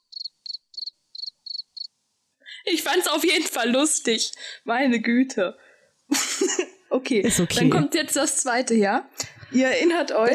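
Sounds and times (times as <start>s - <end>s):
cricket chirping sound effect played from a soundboard: 0.0s - 2.0s
speech: 2.7s - 10.3s.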